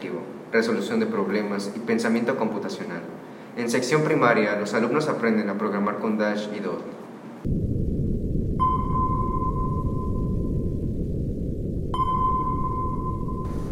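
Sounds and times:
speech: 0.5s - 7.7s
sonar pings: 8.5s - 13.7s.

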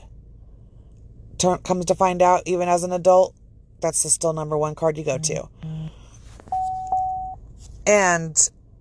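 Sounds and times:
speech: 1.4s - 5.6s, 7.9s - 8.6s
mobile phone beeping: 6.5s - 7.4s.

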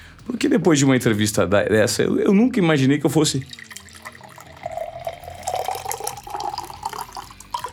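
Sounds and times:
speech: 0.2s - 3.7s
water pouring into a glass: 3.2s - 7.7s.

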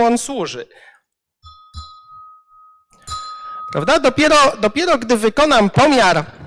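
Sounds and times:
speech: 0.0s - 0.9s, 3.7s - 6.4s
hammer striking a small bell: 1.4s - 5.2s.

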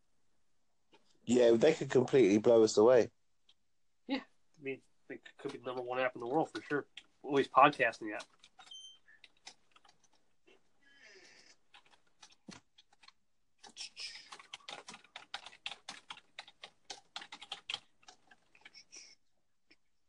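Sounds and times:
speech: 1.3s - 3.2s, 4.1s - 8.4s
rapid computer keyboard typing with clicky keystrokes: 5.4s - 10.3s, 11.1s - 19.1s.

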